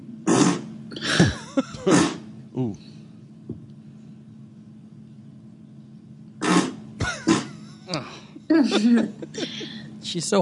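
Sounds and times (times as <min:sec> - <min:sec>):
woman farting in a played video: 0:00.3 - 0:00.7, 0:01.9 - 0:02.2, 0:06.4 - 0:07.6
speech: 0:01.6 - 0:02.8, 0:10.1 - 0:10.4
laughter: 0:07.0 - 0:09.8.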